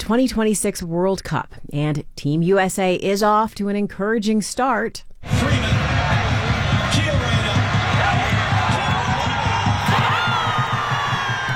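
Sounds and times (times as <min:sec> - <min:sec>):
speech: 0:00.1 - 0:05.4
large outdoor crowd roaring and cheering at a soccer watch party: 0:05.2 - 0:11.5
people whooping and shouting in a crowd: 0:05.3 - 0:11.5.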